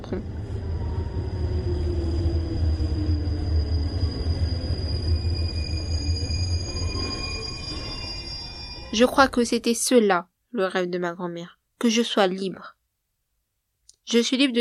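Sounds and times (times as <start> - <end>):
faint high electric whine of a train: 0.0 - 9.4
Paris RER commuter train rumbling: 0.0 - 9.7
speech: 0.1 - 0.4, 9.0 - 12.8, 14.1 - 14.5.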